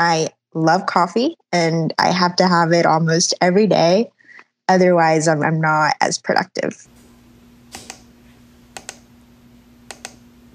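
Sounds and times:
speech: 0.0 - 6.9
faint steady electrical hum: 6.9 - 10.5
computer mouse or keys double-clicking while working on financial reports: 7.7 - 8.1, 8.7 - 9.1, 9.9 - 10.2.

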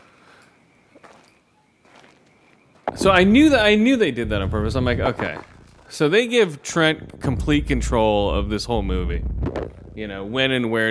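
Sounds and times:
footsteps walking around outside a house: 0.0 - 4.1
steady hiss: 0.0 - 10.8
speech: 3.0 - 10.8.

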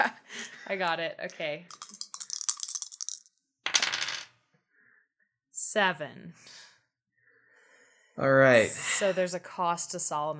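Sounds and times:
speech: 0.7 - 1.8, 5.8 - 6.6, 8.2 - 10.3
two six-sided dice clattering on a hard surface: 1.3 - 4.3.

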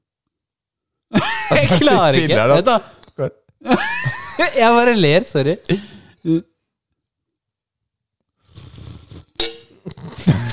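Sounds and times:
laughter: 1.2 - 2.5, 10.1 - 10.5
speech: 1.2 - 6.5
person slurping while sipping a drink: 8.4 - 10.5.

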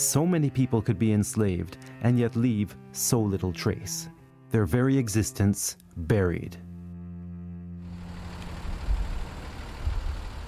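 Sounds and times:
speech: 0.1 - 6.7
low engine rumble and road drone inside a moving bus on a highway: 7.8 - 10.4.

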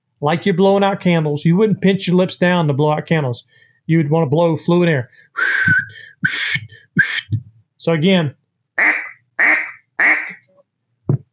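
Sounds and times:
speech: 0.2 - 9.0
nasal quacks blown on a duck call: 8.8 - 10.5.

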